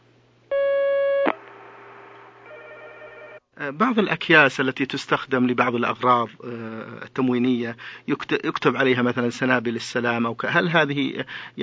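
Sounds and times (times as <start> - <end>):
telephone line tone as a phone call connects: 0.5 - 1.5, 2.4 - 3.4
speech: 3.6 - 11.6.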